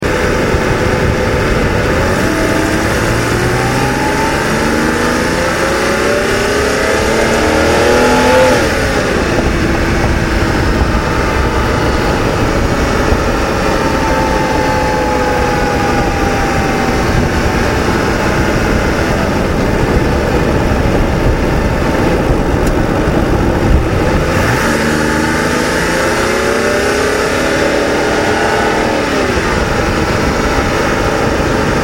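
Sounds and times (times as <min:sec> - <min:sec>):
BMW 523i accelerating outside: 0:00.0 - 0:31.8.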